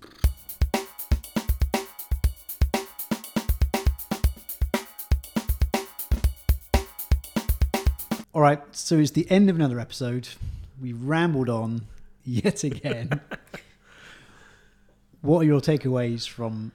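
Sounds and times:
punchy drum beat with kick, snare and cymbal: 0:00.2 - 0:08.3
speech: 0:08.4 - 0:13.6, 0:15.2 - 0:16.7
laughter: 0:12.7 - 0:13.6.

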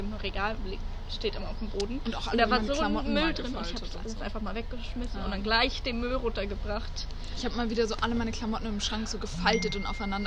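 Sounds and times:
speech: 0:00.2 - 0:10.2
mobile phone notification chime: 0:09.5 - 0:10.2.

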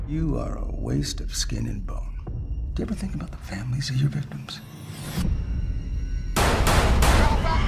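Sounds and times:
speech: 0:00.1 - 0:02.1, 0:02.8 - 0:05.4
loud sharp gunshots from a film trailer: 0:06.4 - 0:07.5.

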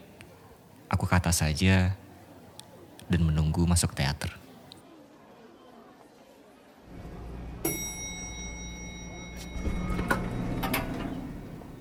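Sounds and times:
speech: 0:01.0 - 0:02.0, 0:03.1 - 0:04.4
bright elevator chime: 0:07.6 - 0:11.7
lift doors sliding open with low rumbling: 0:09.4 - 0:11.7.

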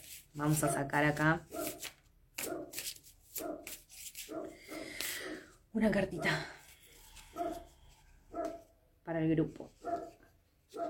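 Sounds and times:
speech: 0:00.4 - 0:01.6, 0:05.8 - 0:06.6, 0:09.1 - 0:09.8
dog barking: 0:02.4 - 0:02.8, 0:03.4 - 0:03.7, 0:04.3 - 0:05.4, 0:06.1 - 0:06.5, 0:07.3 - 0:07.7, 0:08.3 - 0:08.8, 0:09.8 - 0:10.8.

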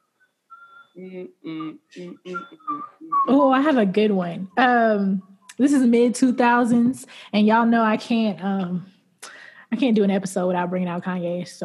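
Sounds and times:
short soft whistled notes: 0:00.0 - 0:06.7
person singing a tune in rhythmic syllables: 0:01.0 - 0:03.5
speech: 0:01.0 - 0:08.9, 0:09.7 - 0:11.6.

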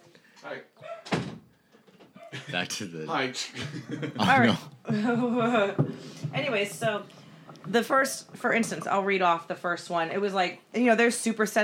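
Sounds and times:
speech: 0:00.4 - 0:00.8, 0:02.5 - 0:11.6
door shutting with a solid thud: 0:01.0 - 0:02.2
laughter: 0:02.2 - 0:05.7.

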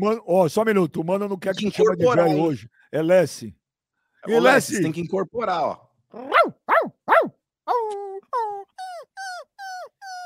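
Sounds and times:
speech: 0:00.0 - 0:03.6, 0:04.2 - 0:06.6
person imitating whining howl-like dog yelps: 0:01.6 - 0:02.5, 0:07.2 - 0:10.2
person imitating dog barks: 0:01.6 - 0:02.6, 0:06.2 - 0:10.2.

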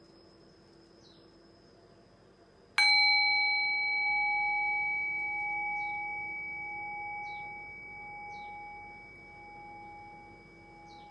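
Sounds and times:
bell ringing: 0:02.8 - 0:11.1.

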